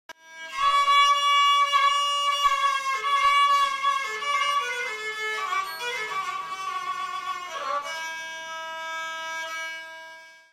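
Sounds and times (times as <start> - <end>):
kabak kemane: 0.4 - 9.6.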